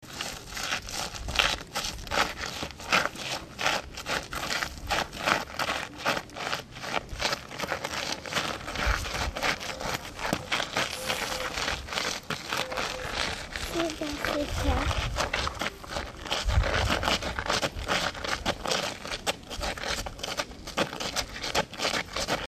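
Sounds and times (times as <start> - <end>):
footsteps walking in sand: 0.0 - 22.4.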